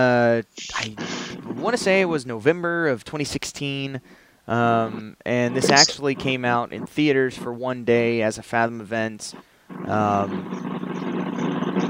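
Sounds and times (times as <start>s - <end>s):
speech: 0.0s - 10.8s
motorcycle engine roaring as it drives by outside: 9.7s - 11.8s.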